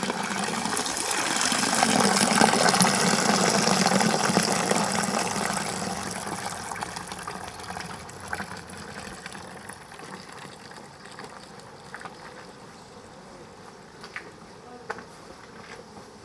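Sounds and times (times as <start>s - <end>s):
water of a town fountain on a square splashing and gushing: 0.0s - 12.6s.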